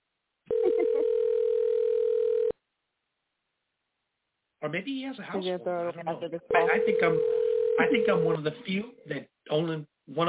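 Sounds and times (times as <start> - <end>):
telephone ringback tone during a phone call: 0.5 - 2.5, 6.6 - 8.4
speech: 4.6 - 10.2.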